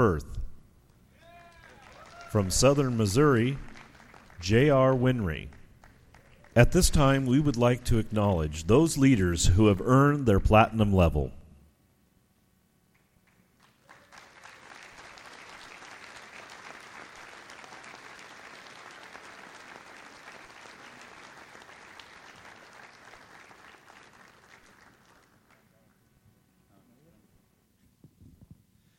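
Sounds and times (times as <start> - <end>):
speech: 0.0 - 0.4, 2.3 - 3.7, 4.4 - 5.6, 6.6 - 11.4
audience applause: 1.2 - 7.5, 13.2 - 25.8.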